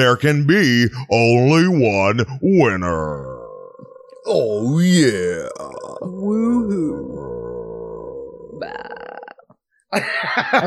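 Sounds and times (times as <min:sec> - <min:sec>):
speech: 0:00.0 - 0:03.3, 0:04.2 - 0:07.3, 0:08.6 - 0:09.0, 0:09.9 - 0:10.6
belch: 0:02.9 - 0:09.4.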